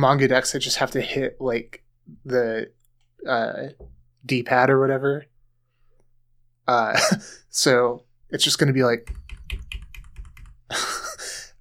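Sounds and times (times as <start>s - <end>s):
speech: 0.0s - 5.3s, 6.7s - 9.6s, 10.7s - 11.2s
computer keyboard typing: 9.0s - 11.1s.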